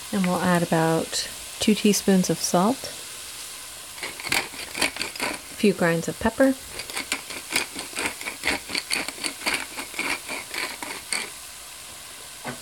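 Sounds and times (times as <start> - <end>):
carrots, onions and celery sizzling in a pan over medium heat: 0.0 - 12.6
speech: 0.1 - 3.0, 5.6 - 6.9
stirring scrapes in a pan: 4.0 - 11.4.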